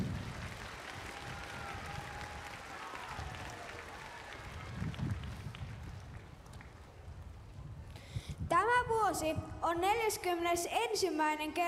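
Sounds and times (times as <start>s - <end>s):
large audience applause: 0.0s - 6.4s
speech: 9.1s - 11.6s.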